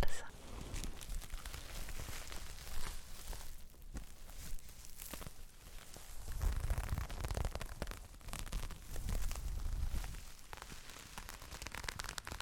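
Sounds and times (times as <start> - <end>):
different kinds of fabric rustling and rubbing: 0.3 - 12.4.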